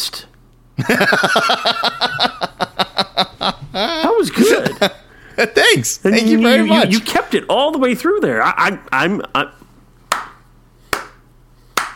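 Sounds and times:
speech: 0.8 - 1.8, 4.2 - 9.6
laughter: 0.8 - 5.8
slow sharp hand claps: 10.0 - 11.9.

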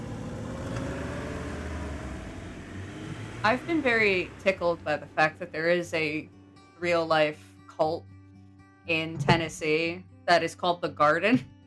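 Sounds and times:
car engine rumbling: 0.0 - 7.3, 8.9 - 10.0
speech: 3.4 - 8.1, 8.8 - 11.5.

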